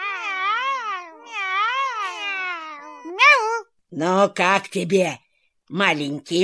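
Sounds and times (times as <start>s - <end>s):
cats meowing: 0.0s - 3.1s
speech: 3.9s - 6.4s.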